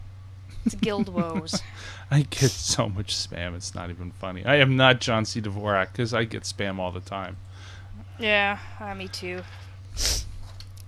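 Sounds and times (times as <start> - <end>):
low steady hum: 0.0 - 10.8
laughter: 0.6 - 3.8
speech: 0.6 - 7.5, 8.2 - 10.2
person sniffling from allergies: 1.5 - 2.8, 10.0 - 10.3.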